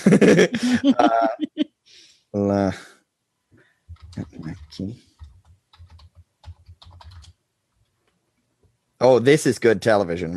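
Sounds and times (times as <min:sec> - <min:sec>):
speech: 0:00.0 - 0:01.5, 0:02.3 - 0:02.9, 0:04.2 - 0:05.1, 0:09.0 - 0:10.3
laughter: 0:00.0 - 0:01.6
burst of voice: 0:00.5 - 0:01.4
rapid typing on a computer keyboard: 0:03.9 - 0:07.4.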